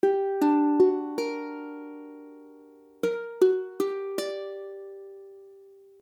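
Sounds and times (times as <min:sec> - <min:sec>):
Gmmaj7 ukulele chord: 0:00.0 - 0:05.8.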